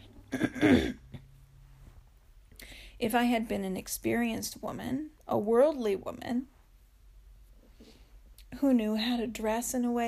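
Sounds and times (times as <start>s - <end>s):
speech: 0.3s - 1.0s, 3.0s - 6.5s, 8.6s - 10.0s
person clearing throat: 0.3s - 1.3s.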